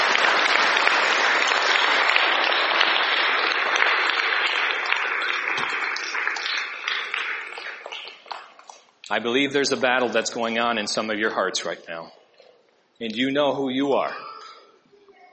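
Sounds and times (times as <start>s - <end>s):
large audience applause: 0.0s - 8.8s
speech: 9.2s - 12.2s, 13.0s - 14.3s.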